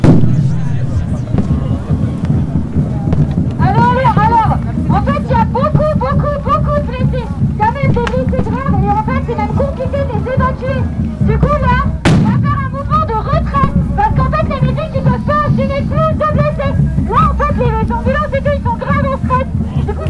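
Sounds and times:
police grenade blast during protest clash: 0.0 - 4.3, 12.1 - 12.7
heavy low rumble: 0.0 - 20.0.

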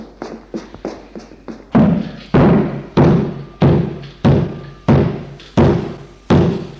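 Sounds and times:
person pounding on a locked cellar door while trying to open it: 1.8 - 6.7.

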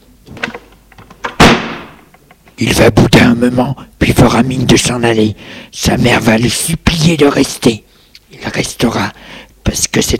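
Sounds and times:
door slammed shut by someone leaving in anger: 0.3 - 2.1
speech: 2.6 - 7.8, 8.4 - 10.1.

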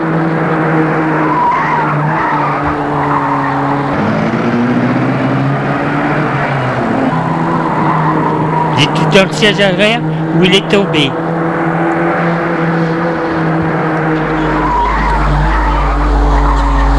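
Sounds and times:
car engine roaring at speed: 0.0 - 16.9
car tires squealing and skidding: 0.0 - 16.9
speech: 9.1 - 11.2.

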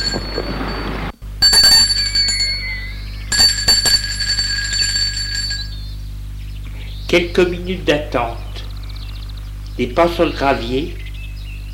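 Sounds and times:
small metallic bell on a garden gate rung by a sliding bell-pull: 0.0 - 6.0
speech: 7.1 - 8.6, 9.8 - 11.0.

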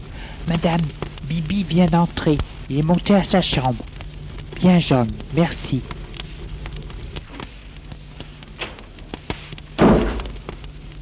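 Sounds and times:
faint clicks and taps: 0.4 - 11.0
speech: 0.5 - 3.9, 4.6 - 5.9
door shutting with a solid thud: 9.8 - 10.4.

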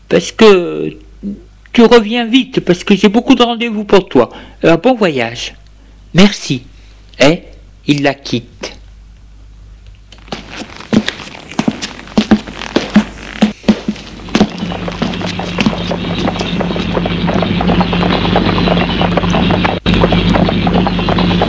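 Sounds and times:
speech: 0.1 - 8.8
horse-drawn cab hooves clip-clopping on the way to a railway station: 10.1 - 21.4.

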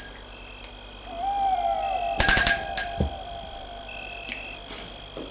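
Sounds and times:
faint sustained tone: 0.9 - 5.2
doorbell ringing in bright metallic bursts: 2.2 - 3.2.

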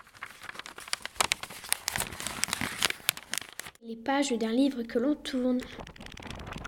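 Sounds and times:
paper being crumpled: 0.0 - 3.8, 5.5 - 6.6
speech: 3.9 - 6.1.

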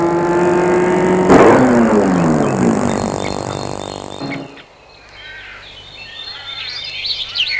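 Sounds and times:
car engine slowing and stopping in front of an inn restaurant: 0.0 - 4.6
birds chirping in the open air: 0.0 - 7.5.

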